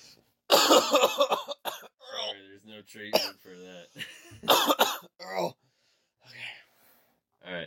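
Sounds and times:
person coughing and sputtering after swallowing aloe water wrong: 0.5 - 2.4, 3.1 - 5.6
speech: 0.9 - 1.4, 2.8 - 5.5.

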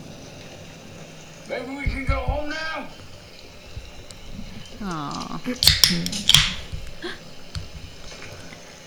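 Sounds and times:
rustling: 0.5 - 8.8
dry twigs snapping: 1.2 - 8.6
speech: 1.5 - 3.1, 4.8 - 7.2.

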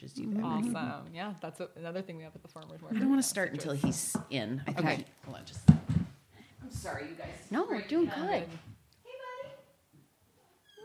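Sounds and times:
speech: 0.0 - 6.0, 6.7 - 8.7
soft murmured voices: 0.0 - 9.8
cat meowing: 10.6 - 10.8.

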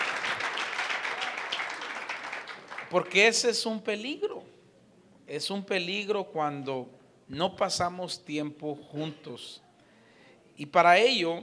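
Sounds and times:
congregation applauding together: 0.0 - 3.4
speech: 2.9 - 4.6, 5.3 - 9.6, 10.6 - 11.4.

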